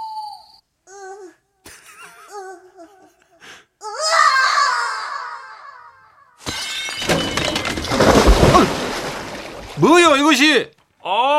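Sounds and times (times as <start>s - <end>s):
person whimpering and babbling: 0.9s - 1.5s, 2.2s - 4.2s
mirror shattering as someone falls into an outhouse pit: 6.4s - 10.1s
speech: 9.8s - 11.3s.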